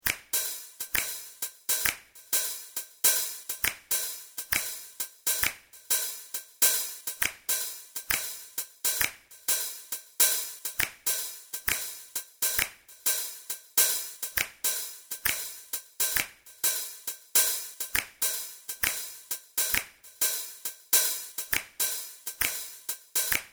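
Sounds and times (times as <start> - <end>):
hi hat: 0.0 - 23.5
looping finger click rhythm: 0.0 - 23.5.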